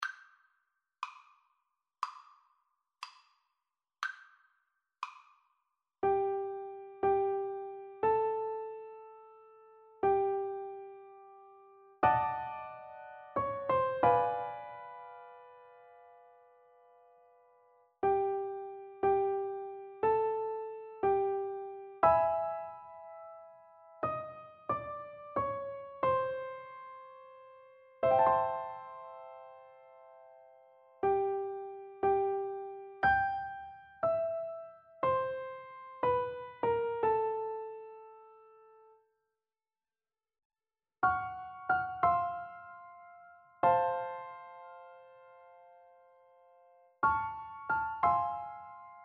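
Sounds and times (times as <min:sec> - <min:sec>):
jazzy birthday song piano duet: 0:06.0 - 0:16.2, 0:18.0 - 0:38.9, 0:41.0 - 0:49.0.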